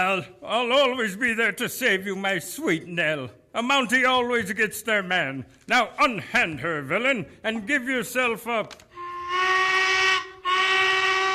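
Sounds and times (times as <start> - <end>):
speech: 0.0 - 9.6
train whistle blasts: 9.0 - 11.3.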